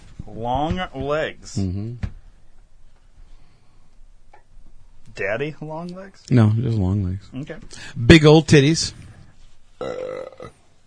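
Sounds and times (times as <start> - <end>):
speech: 0.2 - 2.1, 5.2 - 9.0, 9.8 - 10.6
short feeble throaty burp: 9.8 - 10.6.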